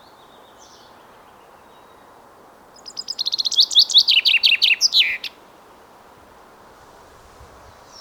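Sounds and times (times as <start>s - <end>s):
common chaffinch Fringilla coelebs song: 2.8s - 5.4s.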